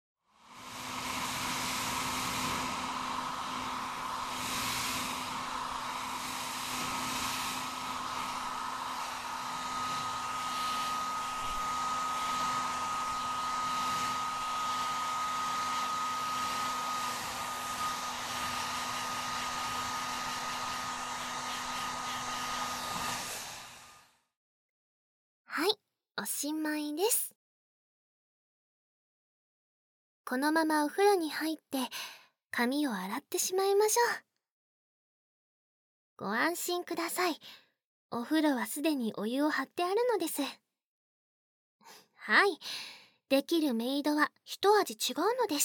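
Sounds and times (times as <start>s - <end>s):
hair dryer blowing on a high setting: 0.3s - 24.2s
speech: 26.2s - 27.3s, 30.3s - 34.2s, 36.2s - 40.6s, 41.8s - 45.6s.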